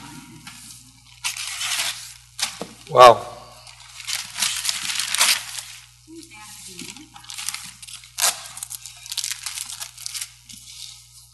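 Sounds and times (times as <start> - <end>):
gift wrapping paper being torn and crumpled as a present is opened: 1.0 - 2.6, 3.6 - 11.3
brief sharp rips of gift wrapping paper: 1.2 - 2.6, 4.0 - 5.8, 7.3 - 10.9
speech: 2.9 - 3.3.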